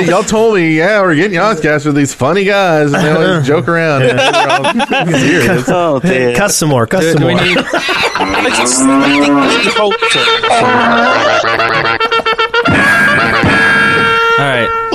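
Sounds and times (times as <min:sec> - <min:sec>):
speech: 0:00.0 - 0:12.0
laughter: 0:02.8 - 0:14.4
cow mooing: 0:08.2 - 0:12.0.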